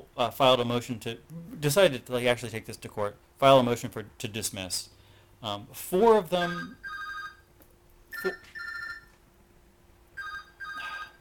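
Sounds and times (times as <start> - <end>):
speech: 0.2 - 7.0, 8.2 - 8.5
phone ringing in short electronic trills: 6.4 - 7.5, 8.1 - 9.2, 10.2 - 11.1.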